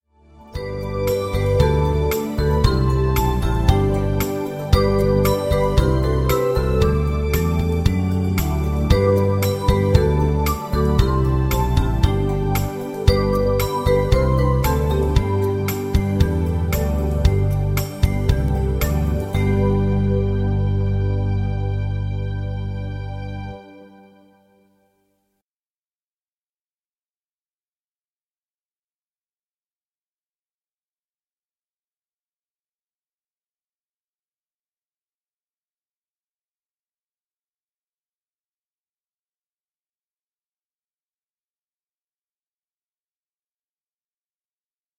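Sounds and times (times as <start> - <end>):
backing track for a flute melody without the flute: 0.6 - 23.5.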